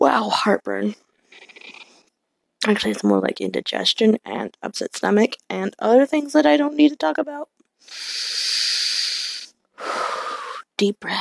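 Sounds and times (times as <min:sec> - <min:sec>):
speech: 0:00.0 - 0:01.1, 0:02.6 - 0:08.8, 0:10.8 - 0:11.1
deep slow breathing: 0:07.9 - 0:10.6.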